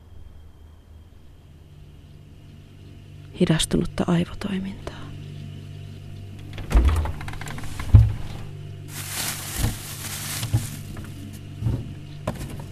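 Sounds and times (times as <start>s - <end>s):
steady low hum: 0.0s - 12.7s
speech: 3.4s - 5.0s
dull heavy thuds against refrigerator walls: 7.8s - 8.4s, 9.5s - 12.7s.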